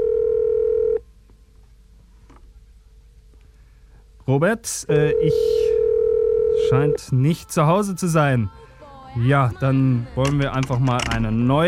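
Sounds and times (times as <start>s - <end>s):
electronic telephone ringing tone: 0.0s - 1.0s, 5.1s - 8.5s
speech: 4.3s - 5.7s, 6.7s - 11.6s.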